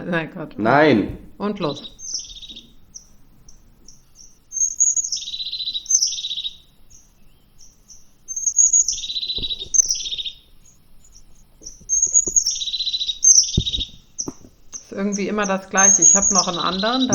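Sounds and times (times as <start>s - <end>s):
speech: 0.0s - 2.6s, 15.0s - 17.1s
crested tit song with buzzy trills and short chirps: 0.0s - 17.1s
low thumps: 0.6s - 3.9s, 9.0s - 12.6s, 13.4s - 17.1s.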